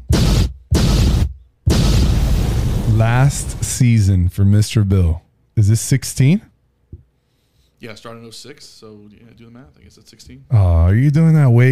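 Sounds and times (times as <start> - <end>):
bomb explosion sound effect: 0.0 - 3.7
speech: 3.0 - 6.5, 7.8 - 11.7.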